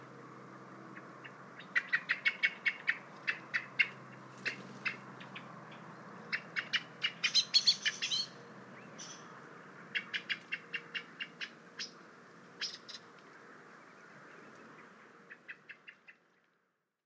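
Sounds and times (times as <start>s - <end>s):
common blackbird Turdus merula chinking: 1.2s - 9.3s, 9.9s - 12.0s, 12.6s - 13.1s.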